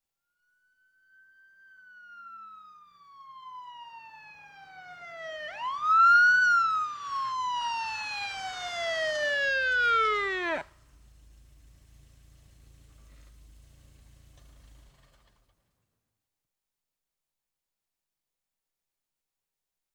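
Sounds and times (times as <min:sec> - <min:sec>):
police car siren wailing: 0:00.4 - 0:11.0
police car arriving: 0:01.2 - 0:15.5.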